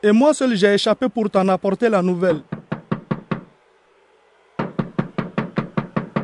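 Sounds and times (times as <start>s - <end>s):
speech: 0.0s - 2.6s
knocking on a door: 2.5s - 3.5s, 4.6s - 6.2s.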